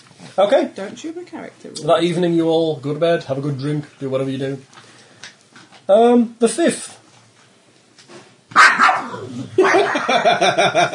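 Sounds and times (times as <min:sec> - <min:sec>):
speech: 0:00.3 - 0:04.9, 0:05.9 - 0:07.0, 0:09.6 - 0:10.9
novelty dog alarm clock playing recorded dog barking: 0:08.6 - 0:09.0
laughter: 0:09.6 - 0:10.9.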